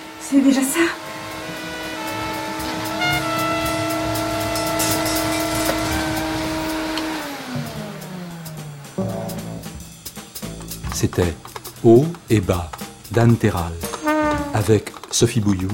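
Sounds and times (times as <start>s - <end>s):
vacuum cleaner running in a valley: 0.0s - 10.0s
speech: 0.3s - 1.1s, 11.0s - 13.9s, 14.5s - 15.7s.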